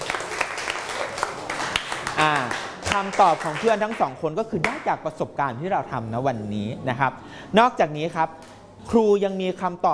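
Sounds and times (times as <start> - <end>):
students clapping in a classroom: 0.0 - 4.8
speech: 2.2 - 9.9.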